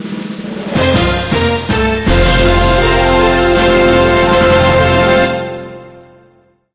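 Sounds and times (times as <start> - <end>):
loud jingle effect: 0.7 - 6.0.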